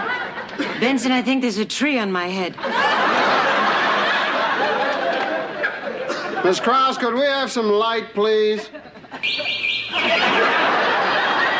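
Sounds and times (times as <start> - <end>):
laughter: 0.0 - 0.9, 2.6 - 7.4, 8.4 - 11.5
speech: 0.8 - 3.0, 6.4 - 10.6
dense chorus of birds chirping at dawn: 9.2 - 10.7.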